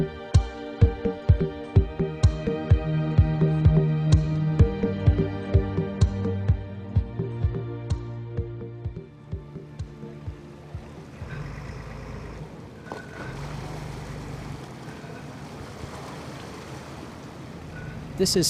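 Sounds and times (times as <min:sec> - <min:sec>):
steady wind around a sailboat: 0:00.0 - 0:18.4
choppy lake water splashing and rushing around a sailboat: 0:09.9 - 0:18.4
speech: 0:18.2 - 0:18.4.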